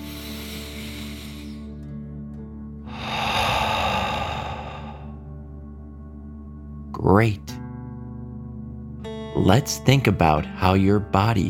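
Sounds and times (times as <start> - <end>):
deep breath blown out through the mouth during a guided relaxation exercise: 0.0 - 1.8, 2.9 - 5.2
speech: 7.0 - 7.5, 9.4 - 11.4.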